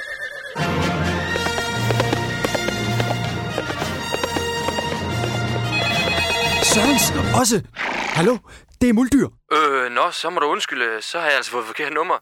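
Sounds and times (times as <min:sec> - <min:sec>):
horse whinnying: 0:00.0 - 0:00.7, 0:05.2 - 0:08.4
horse hooves galloping away: 0:00.6 - 0:07.6
speech: 0:06.8 - 0:12.2.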